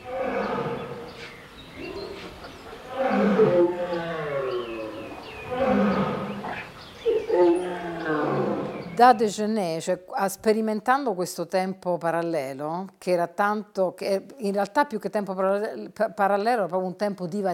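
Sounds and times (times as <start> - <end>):
lions and tigers roaring at a zoo: 0.0 - 9.0
big cats' rumbling growls: 1.8 - 9.0
speech: 9.0 - 17.5.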